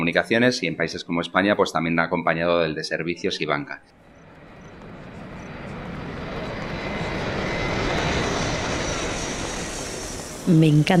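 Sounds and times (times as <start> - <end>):
speech: 0.0 - 4.0, 10.5 - 10.9
airplane in flight engine roar: 3.8 - 10.9.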